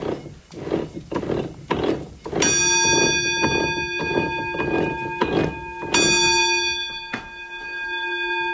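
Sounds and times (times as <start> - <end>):
rhythmic wooden clatter and knocking of watermill machinery: 0.0 - 6.7
warning bell on the roller mill of a watermill ringing: 2.4 - 8.5.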